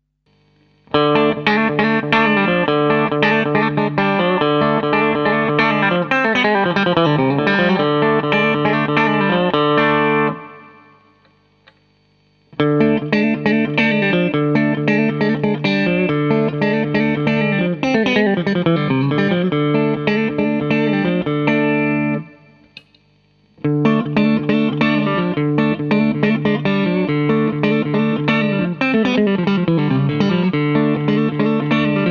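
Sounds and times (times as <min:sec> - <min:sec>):
electric guitar playing country on bridge middle and neck pickups: 0:00.9 - 0:11.2, 0:12.5 - 0:22.8, 0:23.6 - 0:32.0.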